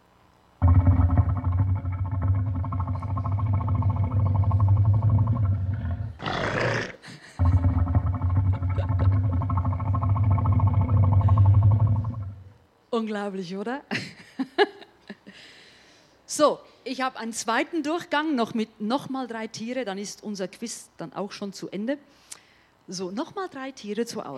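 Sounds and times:
Nile crocodile deep throaty rumbling bellow: 0.6s - 12.6s
laughter: 7.0s - 7.6s, 8.5s - 9.4s
speech: 13.0s - 14.1s, 16.4s - 24.3s.

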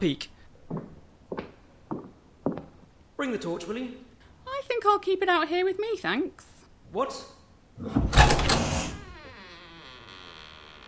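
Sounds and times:
speech: 0.0s - 0.8s, 3.2s - 4.1s, 4.8s - 8.2s
heavy secret sliding door grinding shut: 7.8s - 9.2s.

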